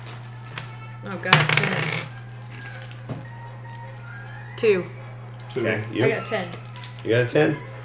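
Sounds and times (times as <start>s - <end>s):
speech: 1.0s - 2.2s, 4.6s - 7.7s
dice rattling across a hard tabletop: 1.3s - 2.1s.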